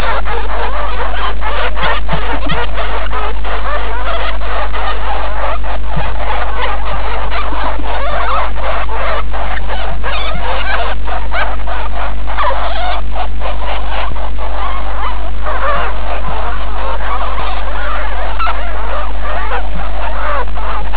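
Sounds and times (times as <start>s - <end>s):
babies: 0.0s - 20.9s
ferret: 0.0s - 20.9s.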